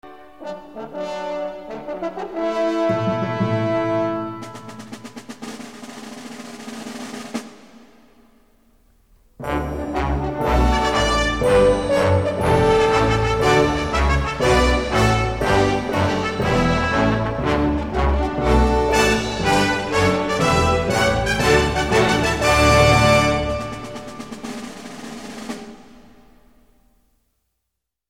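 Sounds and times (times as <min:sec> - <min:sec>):
trumpet fanfare: 0:00.0 - 0:05.4, 0:09.4 - 0:25.5.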